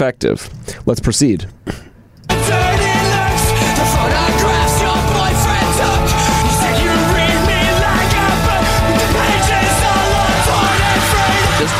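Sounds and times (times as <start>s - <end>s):
speech: 0.0s - 1.9s
distorted guitars: 2.3s - 11.7s
loud dense rock song with raw screaming vocals: 2.3s - 11.7s
pounding drums: 2.3s - 11.7s.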